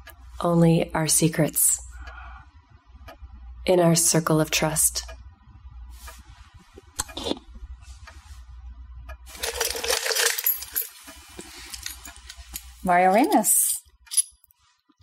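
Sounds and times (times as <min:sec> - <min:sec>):
speech: 0:00.4 - 0:01.8, 0:03.7 - 0:05.2, 0:12.9 - 0:13.6
keys jangling in a gigantic punch bowl: 0:09.4 - 0:14.4.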